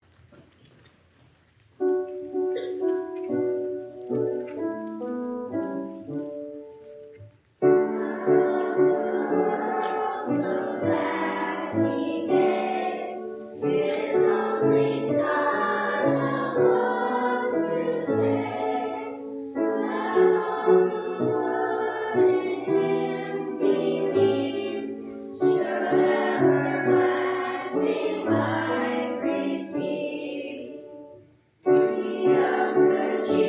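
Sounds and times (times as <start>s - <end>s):
Sunday school children: 1.8s - 33.4s.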